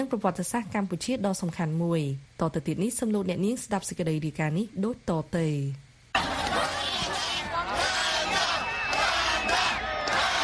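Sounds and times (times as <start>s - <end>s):
speech: 0.0s - 5.8s
thousands of spectators at a music and culture festival shouting and calling out names: 6.2s - 10.4s.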